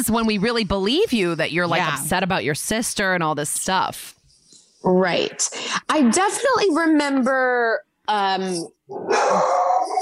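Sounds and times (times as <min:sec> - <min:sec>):
speech: 0:00.0 - 0:04.2, 0:04.8 - 0:10.0
dog barking: 0:09.0 - 0:10.0.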